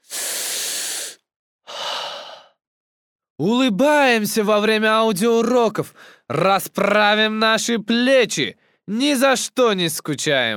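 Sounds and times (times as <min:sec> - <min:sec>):
deep breathing close to the microphone: 0:00.0 - 0:02.6
speech: 0:03.4 - 0:10.5.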